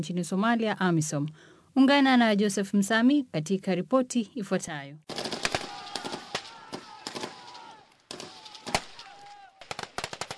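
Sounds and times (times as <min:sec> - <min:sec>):
speech: 0:00.0 - 0:05.2
rifle gunfire during military training: 0:05.1 - 0:10.3.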